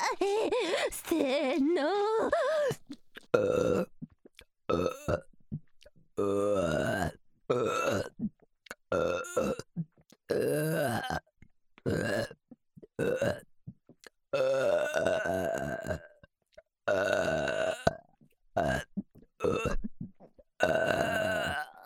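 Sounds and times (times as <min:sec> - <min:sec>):
speech: 0:00.2 - 0:02.6
loud burping: 0:03.4 - 0:03.9, 0:04.7 - 0:05.2, 0:06.2 - 0:08.1, 0:08.9 - 0:09.7, 0:10.3 - 0:11.2, 0:11.9 - 0:12.3, 0:13.0 - 0:13.4, 0:14.4 - 0:16.2, 0:16.9 - 0:18.0, 0:18.6 - 0:19.8, 0:20.6 - 0:21.8.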